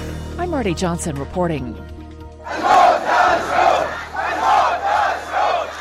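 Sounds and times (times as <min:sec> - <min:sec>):
speech: 0:00.5 - 0:01.9
large crowd of protesters chanting slogans in unison: 0:02.4 - 0:05.7.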